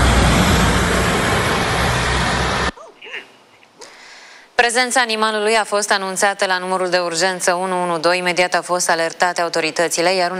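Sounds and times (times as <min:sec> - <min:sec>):
vehicle passing on a national road in the evening: 0:00.0 - 0:02.7
speech: 0:04.6 - 0:10.3.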